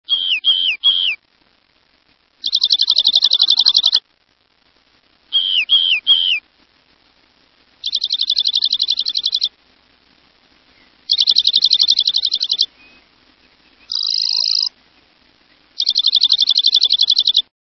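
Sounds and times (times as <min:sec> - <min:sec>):
rock wren calling: 0:00.1 - 0:01.2, 0:02.4 - 0:04.0, 0:05.3 - 0:06.4, 0:07.8 - 0:09.6, 0:10.7 - 0:17.5.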